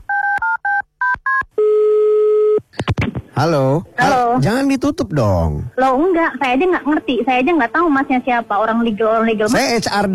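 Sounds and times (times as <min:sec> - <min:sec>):
electronic telephone keypad dialing tones: 0:00.0 - 0:02.6
speech: 0:03.4 - 0:10.1.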